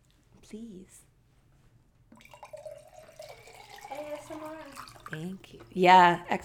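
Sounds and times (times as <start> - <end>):
speech: 0.5 - 1.1, 4.0 - 6.4
water poured from filter pitcher into glass jar: 2.2 - 5.6.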